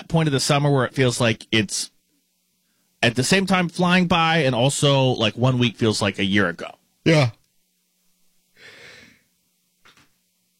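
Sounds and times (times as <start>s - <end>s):
speech: 0.1s - 1.9s, 3.0s - 7.4s
long breathy yawn: 8.6s - 9.2s
short exhaled sigh: 8.6s - 9.3s.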